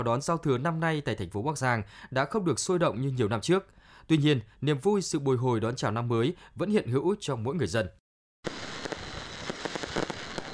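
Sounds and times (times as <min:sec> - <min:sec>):
speech: 0:00.0 - 0:08.6
fireworks exploding at a New Year's Eve celebration in Bac Giang: 0:08.4 - 0:10.5.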